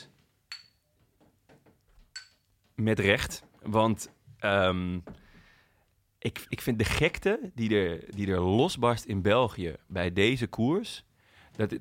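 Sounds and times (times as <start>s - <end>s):
glasses clinking in a toast: 0.5s - 0.9s, 2.1s - 2.5s
speech: 2.8s - 5.2s, 6.2s - 11.7s.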